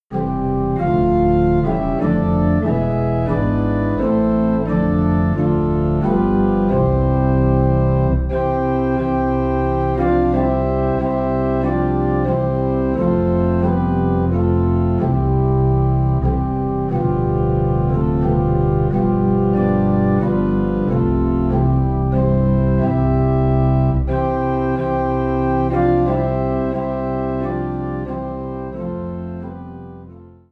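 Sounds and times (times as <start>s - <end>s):
low organ playing a Christmas carol in C: 0.0s - 30.5s.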